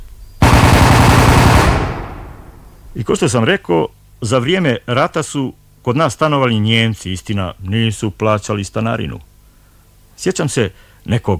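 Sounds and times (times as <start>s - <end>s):
wartime machine-gun burst sound effect: 0.4s - 2.6s
speech: 2.9s - 9.3s, 10.2s - 11.3s.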